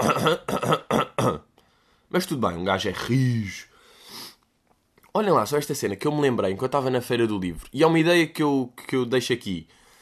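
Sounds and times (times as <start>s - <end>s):
speech: 0.0s - 0.9s, 2.1s - 3.7s, 5.2s - 9.8s
harsh rasping coughing fit: 0.0s - 1.5s.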